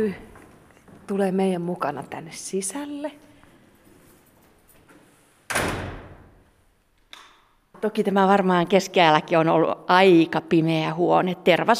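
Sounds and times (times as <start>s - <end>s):
speech: 0.0s - 0.3s, 1.1s - 3.3s, 7.8s - 11.7s
low wooden door swinging shut with a heavy thud in a reverberant room: 5.5s - 6.4s.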